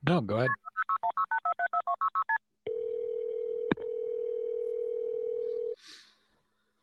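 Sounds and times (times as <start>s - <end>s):
speech: 0.1s - 1.3s
telephone ringing tone of a 911 call: 2.7s - 5.8s.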